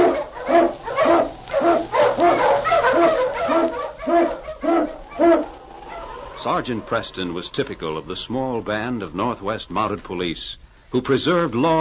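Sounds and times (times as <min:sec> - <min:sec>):
sled dog barking: 0:00.0 - 0:06.2
speech: 0:06.4 - 0:11.7.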